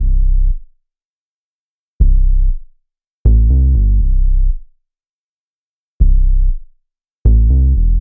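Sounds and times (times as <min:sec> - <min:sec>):
electro dub sub bass loop: 0:00.0 - 0:00.6, 0:02.0 - 0:02.6, 0:03.3 - 0:04.6, 0:06.0 - 0:06.6, 0:07.3 - 0:07.9.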